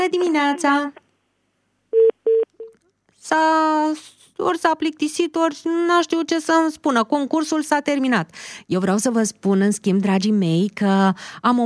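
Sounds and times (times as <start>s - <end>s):
speech: 0.1s - 1.0s, 3.2s - 11.6s
short electronic telephone tones: 2.0s - 2.5s.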